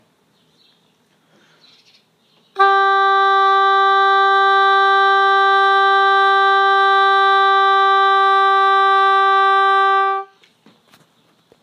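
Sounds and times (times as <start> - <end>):
long tone: 2.6 - 10.3.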